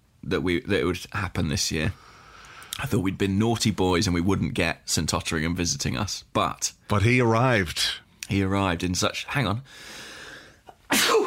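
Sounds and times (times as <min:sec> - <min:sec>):
speech: 0:00.3 - 0:02.1, 0:02.8 - 0:10.1
breath intake: 0:02.0 - 0:02.8
loud sneeze: 0:10.9 - 0:11.2.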